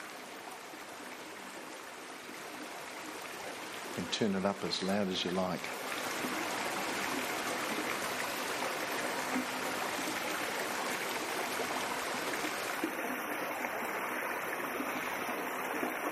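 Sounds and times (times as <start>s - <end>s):
clear mountain stream flowing over rocks: 0.0s - 16.1s
speech: 4.0s - 6.4s.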